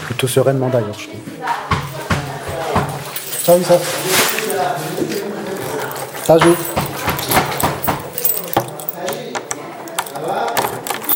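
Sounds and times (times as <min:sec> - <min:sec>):
speech: 0:00.2 - 0:01.4, 0:03.4 - 0:05.2, 0:06.3 - 0:06.8
keys jangling while locking a door: 0:03.0 - 0:11.1.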